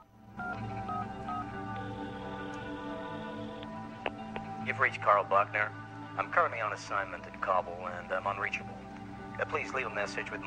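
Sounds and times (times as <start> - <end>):
telephone keypad tones from hand dialing: 0.4 - 3.6
speech: 4.7 - 8.8, 9.4 - 10.4.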